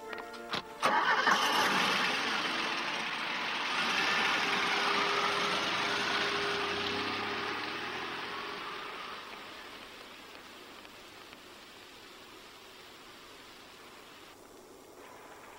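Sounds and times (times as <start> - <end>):
car engine cranking and starting: 0.8 - 10.4.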